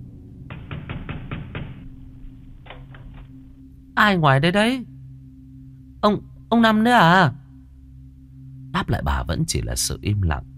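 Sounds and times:
low hum: 0:00.0 - 0:10.5
loud knocking on a house door: 0:00.5 - 0:02.0
speech: 0:04.0 - 0:04.9, 0:06.0 - 0:07.4, 0:08.7 - 0:10.5.

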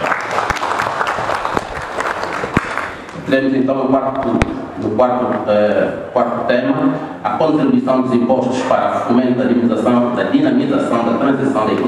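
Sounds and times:
business conference audience applauding: 0:00.0 - 0:03.3
speech: 0:03.3 - 0:11.8.

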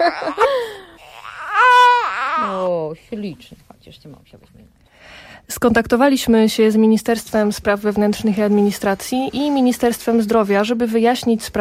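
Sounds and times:
speech: 0:00.0 - 0:00.5, 0:02.9 - 0:11.5
baby crying: 0:00.0 - 0:02.8.

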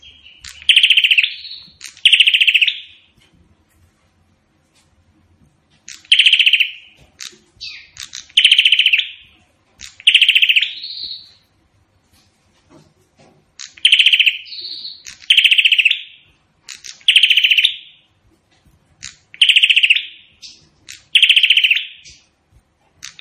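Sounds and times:
prinia singing loud rattling trills with buzzy notes: 0:00.0 - 0:03.1, 0:05.9 - 0:11.4, 0:13.6 - 0:18.1, 0:19.0 - 0:22.3.

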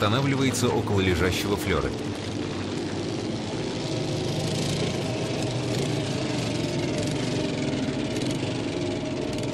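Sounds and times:
speech: 0:00.0 - 0:02.4
motorcycle engine running: 0:01.9 - 0:09.5.

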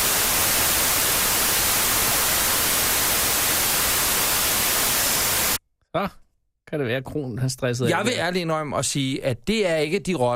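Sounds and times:
white noise hiss: 0:00.0 - 0:05.6
speech: 0:06.0 - 0:10.3.

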